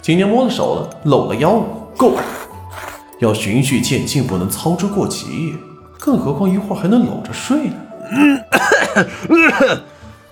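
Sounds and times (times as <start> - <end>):
speech: 0.0 - 2.4, 3.2 - 9.9
person coughing after choking on soup: 8.0 - 9.8.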